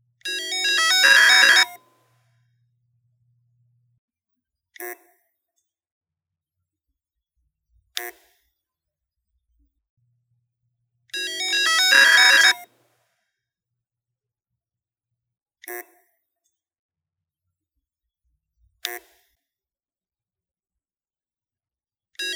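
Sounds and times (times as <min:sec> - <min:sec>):
300GB hard drive melody: 0:00.3 - 0:01.7, 0:11.2 - 0:12.6.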